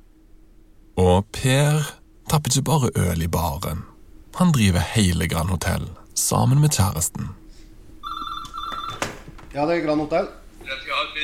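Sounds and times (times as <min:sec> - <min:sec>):
speech: 0:01.2 - 0:07.4, 0:09.5 - 0:11.2
telephone call to a hotel ringing: 0:08.0 - 0:09.3.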